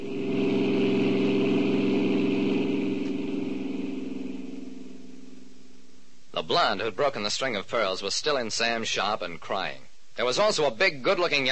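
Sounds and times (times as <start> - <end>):
car engine running with a low droning hum: 0.0 - 6.0
speech: 6.5 - 11.5.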